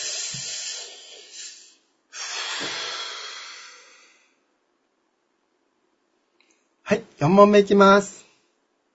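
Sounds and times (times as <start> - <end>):
deep breathing during a warm-up stretching exercise: 0.0 - 4.4
speech: 6.9 - 8.2.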